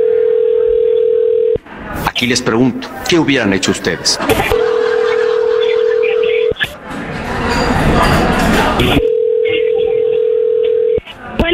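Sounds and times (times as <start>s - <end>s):
steady humming telephone dialing tone: 0.0s - 1.6s, 4.5s - 6.6s, 8.8s - 11.0s
speech: 2.2s - 4.6s
laughter: 3.6s - 9.0s.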